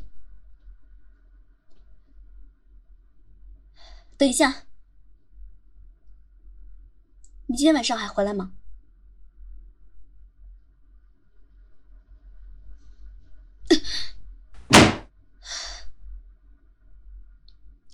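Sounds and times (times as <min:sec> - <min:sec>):
speech: 0:04.2 - 0:04.7, 0:07.5 - 0:08.6
door slammed shut: 0:14.6 - 0:15.0.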